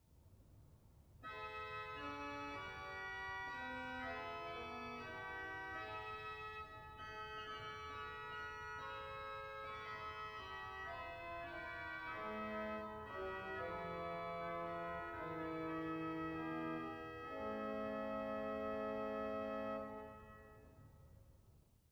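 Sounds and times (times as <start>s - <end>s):
Sauer pipe organ Fugara stop in Dortmund: 1.3s - 20.4s.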